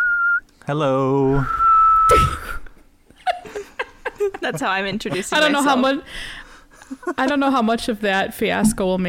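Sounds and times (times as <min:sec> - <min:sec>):
person whistling: 0:00.0 - 0:00.5, 0:01.3 - 0:02.7
speech: 0:00.7 - 0:02.4, 0:04.4 - 0:09.0
laughter: 0:03.2 - 0:06.0.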